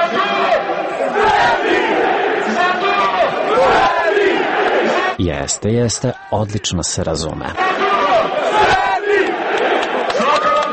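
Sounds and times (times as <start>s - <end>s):
large crowd of football fans chanting and shouting in a stadium: 0.0s - 5.2s, 7.6s - 10.7s
national team footballer leading chant over a microphone: 5.1s - 7.6s
speech: 5.3s - 7.8s.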